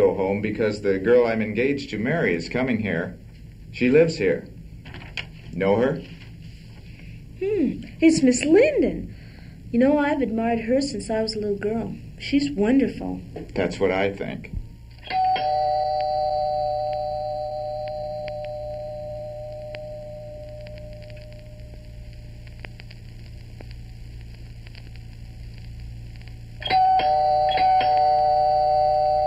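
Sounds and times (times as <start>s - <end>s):
steady hum: 0.0s - 29.2s
speech: 0.2s - 6.2s, 7.4s - 14.6s
doorbell ringing with bright sustained tones: 15.0s - 21.3s, 26.6s - 29.2s.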